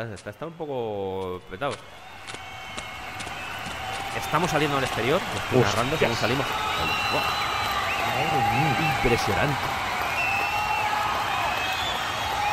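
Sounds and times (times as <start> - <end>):
speech: 0.0 - 2.4, 4.2 - 7.5, 8.2 - 9.9
scattered cheers: 0.3 - 12.5
clapping: 1.2 - 12.5
large crowd shouting and roaring in a big arena: 1.7 - 12.5.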